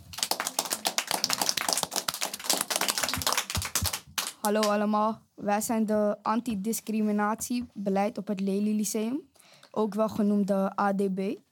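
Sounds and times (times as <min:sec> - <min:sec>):
crowd applauding: 0:00.0 - 0:04.4
speech: 0:04.4 - 0:11.5.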